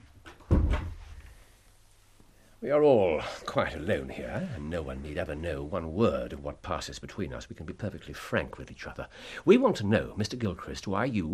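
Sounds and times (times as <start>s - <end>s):
door being pushed shut: 0.5s - 1.0s
speech: 2.6s - 11.3s.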